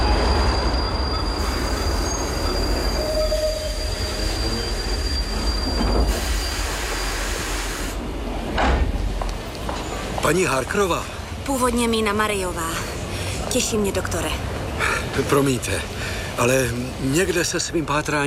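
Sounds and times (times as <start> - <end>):
train clanks: 0.0 - 7.0, 8.1 - 10.8
thin metallic train wheel squeals: 0.0 - 7.2
train rumbling on rails: 0.0 - 18.2
speech: 10.3 - 12.9, 13.5 - 14.5, 15.2 - 18.2.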